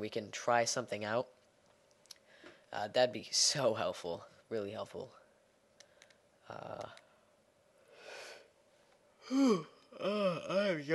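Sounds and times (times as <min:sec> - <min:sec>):
speech: 0:00.0 - 0:01.4, 0:02.7 - 0:05.2, 0:06.5 - 0:07.0, 0:09.3 - 0:10.9
person yawning with a drawn-out voiced groan: 0:09.2 - 0:10.8.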